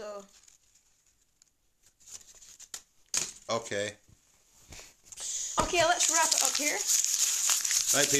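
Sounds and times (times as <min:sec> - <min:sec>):
paper being crumpled: 0:00.2 - 0:02.8, 0:05.8 - 0:08.1
speech: 0:03.5 - 0:04.0, 0:05.7 - 0:07.0, 0:07.9 - 0:08.1.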